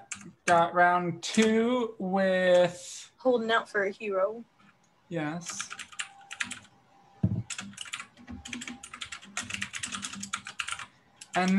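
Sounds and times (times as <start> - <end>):
computer keyboard typing: 0.0 - 0.7, 5.4 - 11.5
speech: 0.2 - 4.5, 5.1 - 5.8, 11.4 - 11.5
low thump: 7.2 - 7.5.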